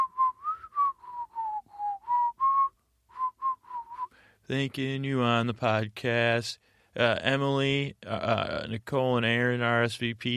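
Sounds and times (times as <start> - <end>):
person whistling while breathing in: 0.0 - 4.3
speech: 4.5 - 10.3.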